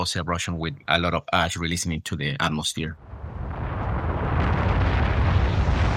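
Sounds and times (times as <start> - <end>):
man speaking: 0.0 - 3.0
deep continuous roar of an explosive volcanic eruption: 3.0 - 5.9.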